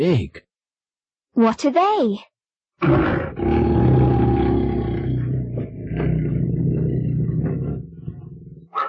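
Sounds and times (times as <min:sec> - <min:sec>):
speech: 0:00.0 - 0:00.4, 0:01.4 - 0:03.6
lions roaring: 0:02.8 - 0:08.8.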